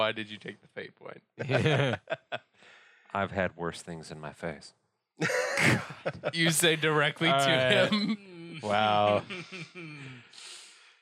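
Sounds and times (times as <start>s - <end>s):
speech: 0.0s - 10.5s
laughter: 1.4s - 2.5s, 5.2s - 10.2s
person gasping dramatically: 2.6s - 3.1s, 9.3s - 11.0s.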